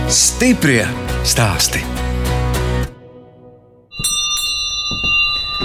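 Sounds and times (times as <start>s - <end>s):
speech: 0.1s - 2.0s
small hand bell ringing with bright sustained metallic tones: 3.9s - 5.6s.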